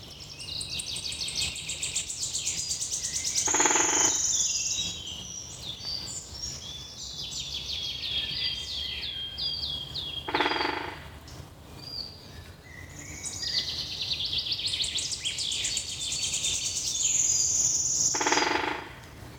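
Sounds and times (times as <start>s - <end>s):
birds chirping and trilling: 0.4s - 11.0s, 11.8s - 19.0s.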